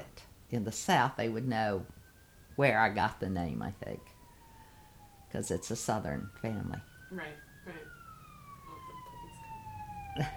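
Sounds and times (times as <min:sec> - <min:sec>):
ambulance siren wailing as it passes: 0:00.0 - 0:10.3
low rumbling street noise: 0:00.0 - 0:10.3
speech: 0:00.5 - 0:02.0, 0:02.6 - 0:04.2, 0:05.3 - 0:08.0, 0:10.2 - 0:10.3.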